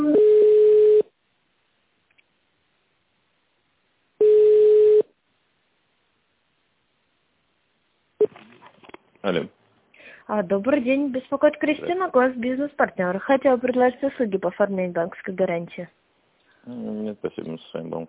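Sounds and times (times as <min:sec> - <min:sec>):
telephone ringback tone as a call is connected: 0:00.1 - 0:01.0, 0:04.2 - 0:05.1
speech: 0:10.4 - 0:16.0, 0:16.6 - 0:18.0.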